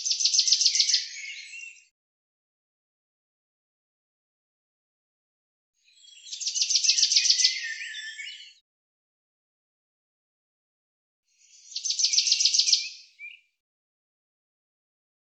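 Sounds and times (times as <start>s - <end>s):
common chaffinch song: 0.0s - 1.9s, 5.8s - 8.6s, 11.3s - 13.6s.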